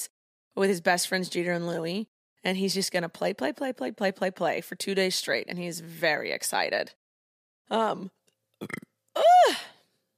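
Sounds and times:
speech: 0.0s - 7.0s, 7.7s - 9.7s
rattly gulp: 8.6s - 8.9s
person burping: 8.6s - 9.0s.

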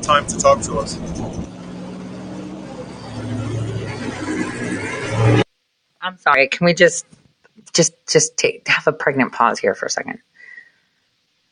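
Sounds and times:
speech: 0.0s - 1.5s, 5.2s - 5.4s, 6.0s - 10.3s
truck engine rumbling while backing out of a yard: 0.0s - 5.5s.

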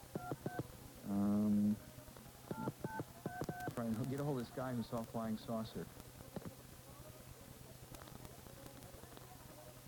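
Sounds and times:
touch-tone telephone dialing beeps: 0.2s - 0.7s, 2.5s - 3.9s
speech: 3.9s - 6.1s.

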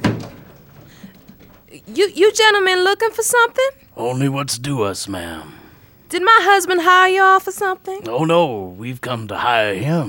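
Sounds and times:
wooden door opening with a low thump as it unlatches: 0.0s - 2.0s
speech: 1.7s - 10.0s.

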